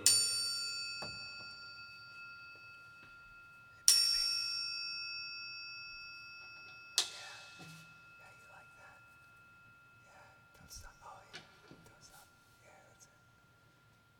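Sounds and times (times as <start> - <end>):
metal triangle struck and ringing: 0.0 - 11.3.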